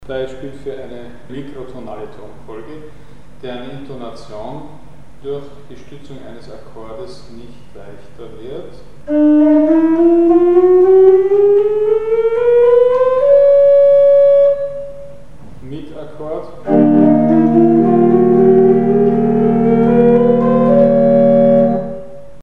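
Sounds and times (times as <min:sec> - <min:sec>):
microtonal note sequence with chord support: 0:09.0 - 0:22.4.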